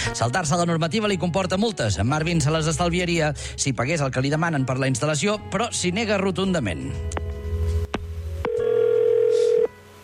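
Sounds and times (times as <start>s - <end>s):
speech: 0.1s - 7.2s
telephone ringing with a steady electronic tone: 8.5s - 9.7s.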